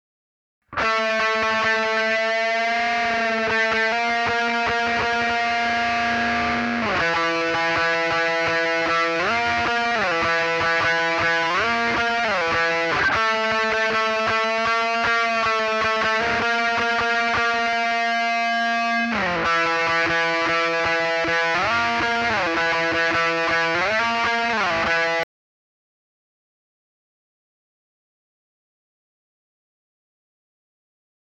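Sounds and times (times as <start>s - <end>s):
guitar solo: 0.7s - 25.2s.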